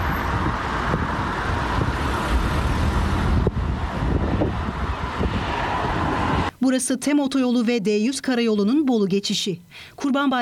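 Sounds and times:
heavy holiday traffic in long queues on a motorway crossing: 0.0 - 6.5
speech: 6.6 - 10.4.

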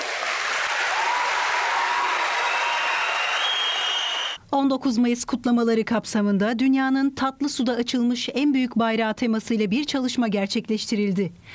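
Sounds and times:
crowd applauding in a hall: 0.0 - 4.4
speech: 4.5 - 11.5.

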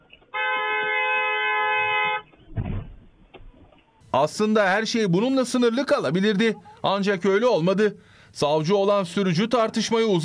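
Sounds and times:
car horn honking at a road junction at a minibus driver: 0.3 - 2.3
speech: 4.2 - 10.2.

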